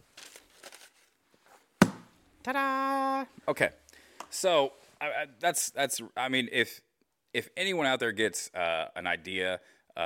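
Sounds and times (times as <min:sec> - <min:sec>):
sheet of fancy paper being crumpled and stowed in a storage compartment: 0:00.0 - 0:01.2
speech: 0:02.4 - 0:10.0.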